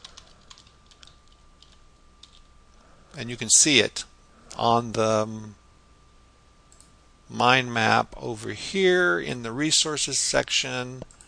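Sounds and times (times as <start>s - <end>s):
light typing on a computer keyboard: 0.0s - 2.5s
speech: 3.1s - 5.6s, 7.3s - 11.2s.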